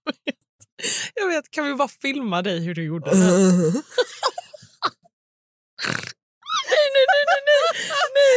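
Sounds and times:
speech: 0:00.8 - 0:04.4
person imitating a pig's snort: 0:03.1 - 0:03.8, 0:05.8 - 0:06.2
laughter: 0:06.6 - 0:08.3.

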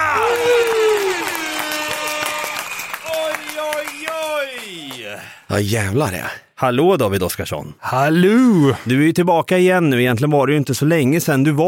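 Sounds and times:
crowd applauding and cheering sound effect: 0:00.0 - 0:05.5
speech: 0:05.5 - 0:11.6.

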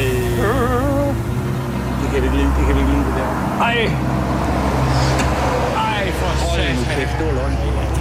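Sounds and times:
motorway traffic of cars and heavier vehicles rushing past: 0:00.0 - 0:07.9
speech: 0:03.6 - 0:04.2, 0:06.6 - 0:07.9.

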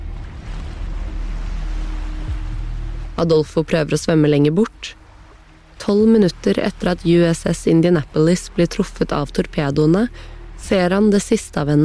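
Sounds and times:
rough sea with churning waves: 0:00.0 - 0:11.8
speech: 0:03.2 - 0:05.0, 0:05.8 - 0:11.8.

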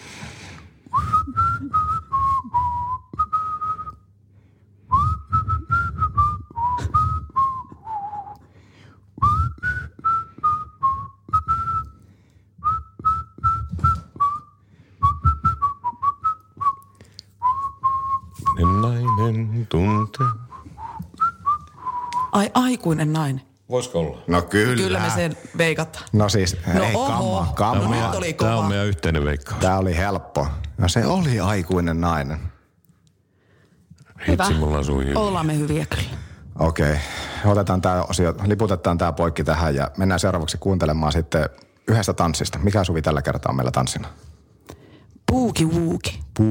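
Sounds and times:
person whistling a pop song melody: 0:00.9 - 0:04.1, 0:04.9 - 0:08.5, 0:09.2 - 0:22.4
speech: 0:22.6 - 0:32.5, 0:34.2 - 0:44.4, 0:45.3 - 0:46.4.

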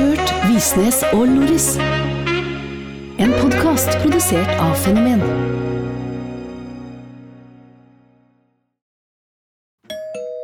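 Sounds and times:
speech: 0:00.6 - 0:02.3, 0:03.2 - 0:06.0
doorbell chime: 0:09.9 - 0:10.4.

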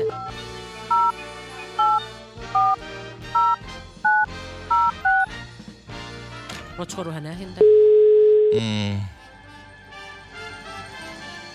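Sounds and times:
telephone touch-tone dialing beeps: 0:00.0 - 0:02.8, 0:03.4 - 0:05.3, 0:07.6 - 0:08.6
speech: 0:06.8 - 0:07.9, 0:08.5 - 0:09.2.

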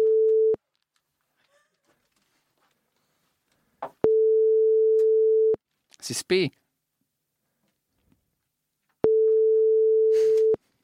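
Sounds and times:
ringback tone of an outgoing phone call: 0:00.0 - 0:00.6, 0:04.0 - 0:05.6, 0:09.0 - 0:10.6
faint noise: 0:00.0 - 0:10.8
speech: 0:06.1 - 0:06.6.

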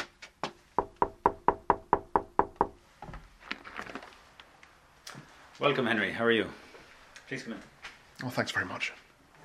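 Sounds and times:
sharp knocks on the wooden door of a cottage in a heritage village: 0:00.8 - 0:02.8
faint rustling and shuffling: 0:02.8 - 0:09.4
speech: 0:05.6 - 0:06.6, 0:07.3 - 0:09.0.

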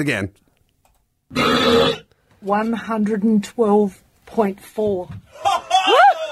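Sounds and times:
speech: 0:00.0 - 0:00.4, 0:01.3 - 0:05.6
loud deep roaring burp: 0:01.3 - 0:02.0
people chuckling: 0:05.3 - 0:06.2.

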